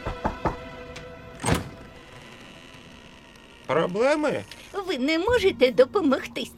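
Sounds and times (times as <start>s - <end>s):
knocking on a door: 0.0s - 0.7s
speech: 3.7s - 6.5s.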